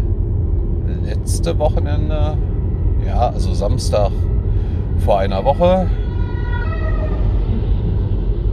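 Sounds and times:
heavy rumble of car and road noise from inside a car on the road: 0.0 - 8.5
speech: 1.3 - 4.3, 5.0 - 6.0
fire engine siren wailing past: 5.8 - 8.5.

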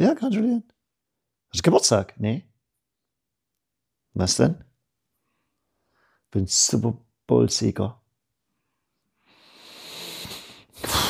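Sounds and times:
speech: 0.0 - 0.7, 1.5 - 2.5, 4.2 - 4.7, 6.3 - 8.0
heavy huffing exhale: 9.4 - 11.0.

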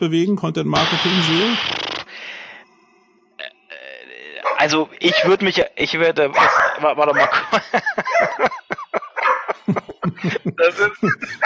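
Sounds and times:
speech: 0.0 - 1.8, 4.6 - 8.6, 10.2 - 11.4
small office watchdog barking in short sharp yaps: 6.3 - 8.4, 9.2 - 9.6
laughter: 7.0 - 11.4.

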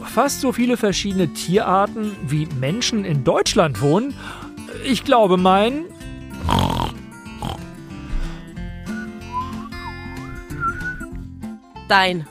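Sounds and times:
speech: 0.2 - 6.6, 11.9 - 12.2
pig grunting and snorting: 6.4 - 8.4
warbling sliding whistle: 8.9 - 11.0.

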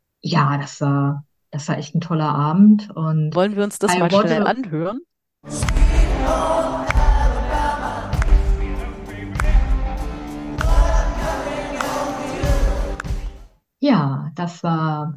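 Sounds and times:
speech: 0.2 - 6.9, 13.8 - 15.1
large concert crowd cheering after a song: 5.5 - 13.4.

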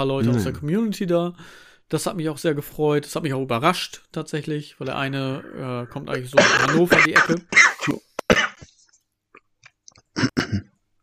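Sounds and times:
speech: 0.0 - 8.1
small throat noises: 4.9 - 8.7, 9.4 - 10.8
person choking and coughing on own saliva: 6.2 - 8.7, 10.0 - 10.8.

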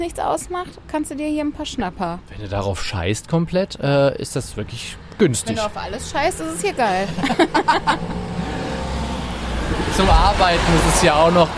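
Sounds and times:
speech: 0.0 - 8.3, 9.7 - 11.5
heavy truck rumbling past: 4.4 - 11.5
laughter: 6.3 - 9.0.

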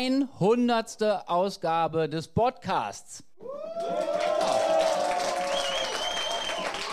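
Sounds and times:
speech: 0.0 - 4.3
live audience cheering: 3.4 - 6.9
live audience clapping: 3.8 - 6.9
rising whistle: 5.5 - 6.9.

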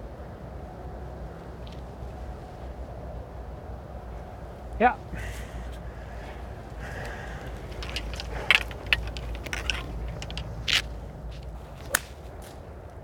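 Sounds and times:
steady breezy outdoor noise: 0.0 - 13.0
speech: 4.8 - 5.4
golf club striking a ball on an approach shot: 5.7 - 12.6.

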